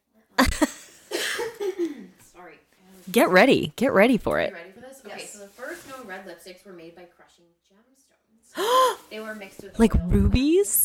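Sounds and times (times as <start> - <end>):
person coughing: 0.4 - 1.8
speech: 2.5 - 10.8.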